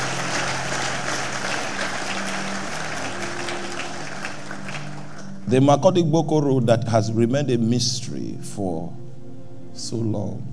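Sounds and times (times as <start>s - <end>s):
large audience clapping: 0.0s - 5.5s
speech: 5.5s - 9.0s, 9.8s - 10.5s.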